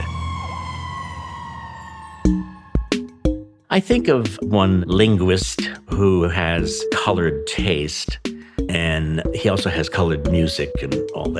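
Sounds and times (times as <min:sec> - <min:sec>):
fire truck siren wailing: 0:00.0 - 0:03.4
speech: 0:03.7 - 0:11.3.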